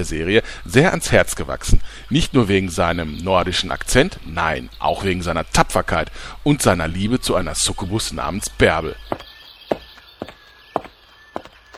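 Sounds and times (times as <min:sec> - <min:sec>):
speech: 0:00.0 - 0:09.2
footsteps at a walking pace: 0:09.1 - 0:11.7.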